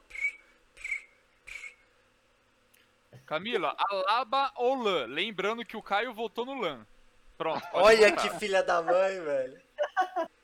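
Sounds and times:
cricket chirps: 0.1s - 1.9s
speech: 3.3s - 10.4s.

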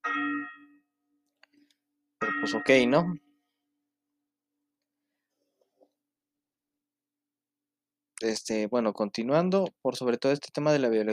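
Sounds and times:
bell strike rung for mass: 0.0s - 0.9s, 2.2s - 3.2s
speech: 2.4s - 3.2s, 8.2s - 11.1s.

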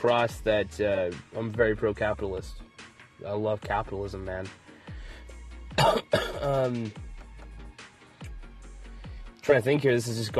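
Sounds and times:
speech: 0.0s - 4.6s, 5.8s - 7.1s, 9.4s - 10.3s
quiet breathy sounds in a small room: 4.7s - 5.4s
loud person coughing: 5.8s - 6.9s
raspy, drawn-out throat clearing: 5.8s - 6.9s.

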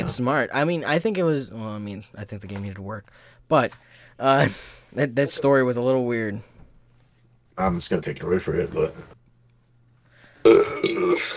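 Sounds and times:
speech: 0.1s - 6.5s, 7.6s - 9.2s, 10.4s - 11.3s
burp into microphone: 10.4s - 11.3s.

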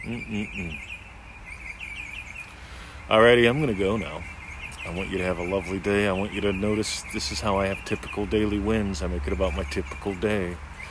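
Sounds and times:
birds chirping and warbling: 0.0s - 10.8s
speech: 0.1s - 1.0s, 3.1s - 10.7s.

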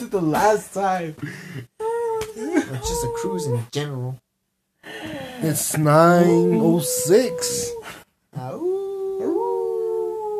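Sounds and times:
speech: 0.0s - 1.7s, 2.7s - 4.2s, 4.8s - 8.7s
dog howling: 1.9s - 3.7s, 6.0s - 10.3s.

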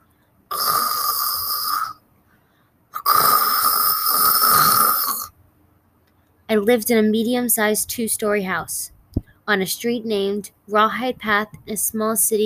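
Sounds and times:
man snoring in a dark house: 0.5s - 2.0s, 3.0s - 5.3s
speech: 6.5s - 8.9s, 9.5s - 12.4s.

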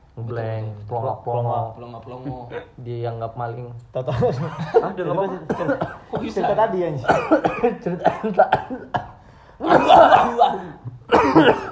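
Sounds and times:
speech: 0.2s - 11.7s
person coughing harshly: 4.6s - 11.7s.

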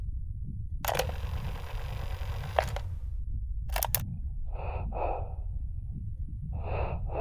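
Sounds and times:
steady low rumble: 0.0s - 7.1s
sharp clicks: 0.8s - 3.0s, 3.7s - 4.1s
breathing played back at high speed: 3.8s - 7.1s.

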